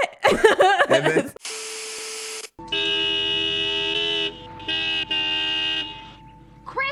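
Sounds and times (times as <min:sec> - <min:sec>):
laughter: 0:00.0 - 0:01.4
speech: 0:00.3 - 0:01.4
car horn honking: 0:02.6 - 0:06.8.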